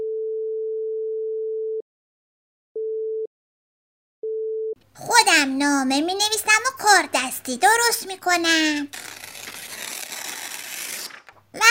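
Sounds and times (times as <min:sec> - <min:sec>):
pure electronic telephone tone: 0:00.0 - 0:01.8
speech: 0:05.0 - 0:09.1.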